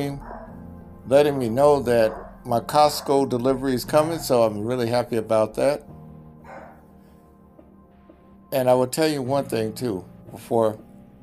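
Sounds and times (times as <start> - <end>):
speech: 0.0 - 0.4, 1.1 - 5.9, 8.5 - 10.8
dogs barking and yipping: 0.0 - 5.1, 6.3 - 7.1.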